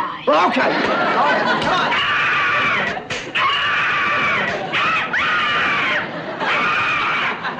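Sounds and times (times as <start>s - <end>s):
speech: 0.3s - 2.1s
laughter: 0.3s - 7.5s
person screaming loudly in long high-pitched bursts: 1.9s - 7.5s.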